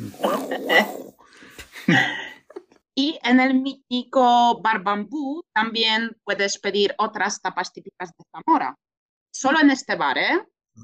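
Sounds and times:
voice imitating a rumbling stomach growl: 0:00.0 - 0:01.2
speech: 0:00.1 - 0:01.0, 0:01.9 - 0:02.2, 0:03.0 - 0:08.8, 0:09.4 - 0:10.8.

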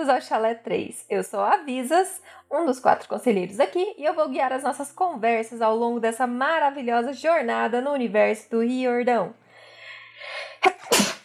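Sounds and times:
speech: 0:00.0 - 0:09.4
person sneezing: 0:10.6 - 0:11.2.

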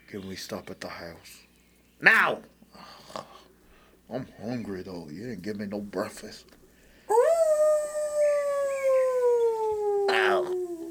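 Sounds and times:
speech: 0:00.1 - 0:03.5, 0:04.1 - 0:07.2
wolf howling in a forest: 0:07.1 - 0:10.9.

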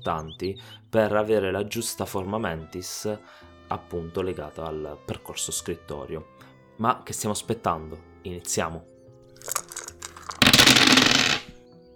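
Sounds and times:
speech: 0:00.0 - 0:09.6
dice rolled and tumbling across a hard surface: 0:09.4 - 0:11.6.

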